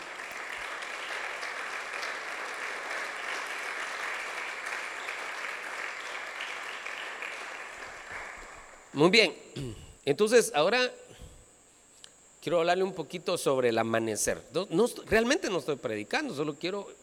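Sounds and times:
congregation applauding: 0.0 - 8.9
speech: 9.0 - 11.0, 12.4 - 17.0.

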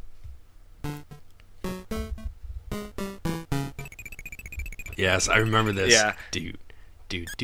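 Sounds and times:
low thumping beats: 0.8 - 6.2
short punchy staccato notes: 0.8 - 6.3
spooky graveyard theme video game music: 0.9 - 6.1
high twinkling tones: 0.9 - 6.3
speech: 5.0 - 7.4.

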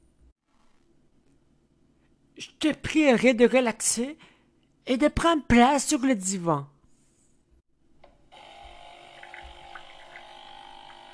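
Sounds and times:
speech: 2.4 - 6.7
brownish liquid pouring from a machine into a cup: 8.6 - 11.1.

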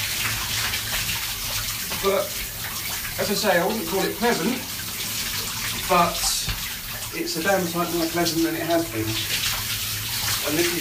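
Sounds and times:
cold shower water pouring over a person's head: 0.0 - 10.7
speech: 2.0 - 2.4, 3.2 - 4.7, 5.9 - 6.3, 7.1 - 9.4, 10.4 - 10.7.

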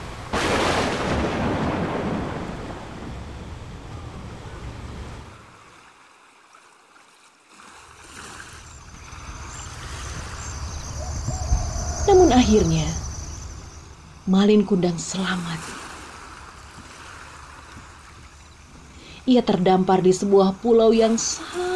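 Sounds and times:
heavy rumbling thunder at sea: 0.0 - 5.3, 8.9 - 14.3
crashing waves in a sea storm: 0.0 - 6.6, 7.4 - 19.3
speech: 12.3 - 13.0, 14.3 - 15.8, 19.3 - 21.6.

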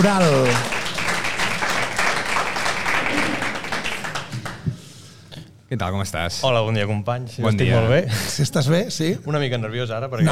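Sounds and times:
speech: 0.0 - 0.8, 5.7 - 10.2
audience applause: 0.0 - 4.7.

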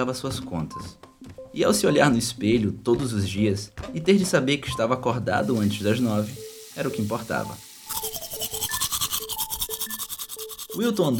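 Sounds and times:
speech: 0.0 - 7.7, 10.8 - 11.1
teeth being brushed with a toothbrush: 7.8 - 11.1.

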